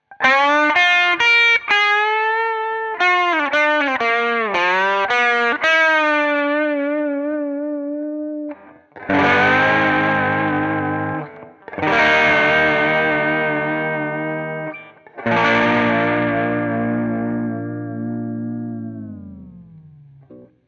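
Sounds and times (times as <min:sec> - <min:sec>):
Vintera II Tele Deluxe guitar with tremolo: 0:00.0 - 0:20.6.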